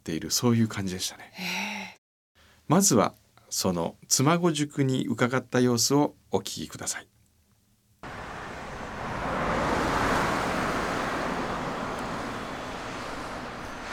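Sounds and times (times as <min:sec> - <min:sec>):
speech: 0:00.0 - 0:01.8, 0:02.7 - 0:07.2
mountain river stream rushing at a bridge in Nagano, Japan: 0:08.0 - 0:13.9.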